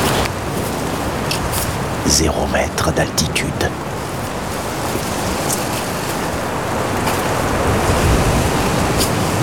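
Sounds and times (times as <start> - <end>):
strong gusts of wind around thirty kilometres per hour at sea level: 0.0 - 9.4
speech: 2.1 - 3.9.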